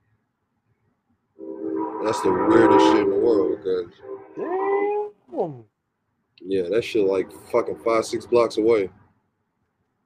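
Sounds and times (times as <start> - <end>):
train horn blaring from train tracks: 1.4 - 4.7
speech: 2.0 - 4.6, 5.4 - 5.7, 6.4 - 9.0.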